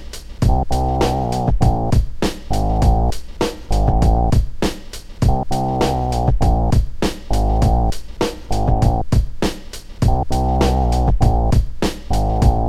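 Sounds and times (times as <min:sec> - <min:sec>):
phatt synth bass: 0:00.5 - 0:03.1, 0:03.7 - 0:04.4, 0:05.3 - 0:07.9, 0:08.5 - 0:09.0, 0:10.1 - 0:12.6.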